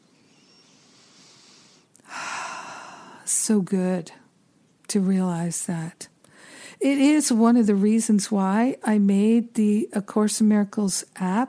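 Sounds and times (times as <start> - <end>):
deep breath: 0.3 - 3.3, 6.3 - 6.8
speech: 3.5 - 4.2, 4.9 - 6.1, 6.8 - 11.4.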